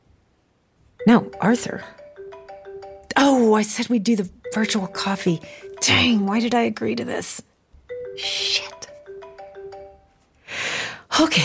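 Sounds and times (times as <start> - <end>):
speech: 1.0 - 2.0, 3.2 - 7.5, 8.2 - 8.7, 11.2 - 11.4
phone ringtone for an incoming call: 1.0 - 3.4, 4.4 - 6.5, 7.9 - 10.2.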